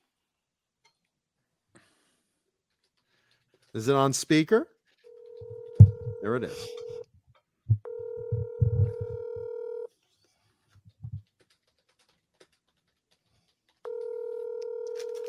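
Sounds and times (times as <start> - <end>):
speech: 3.8 - 4.7, 6.2 - 6.8
mobile phone ringing with an electronic tone: 5.1 - 7.0, 7.8 - 9.9, 13.9 - 15.2.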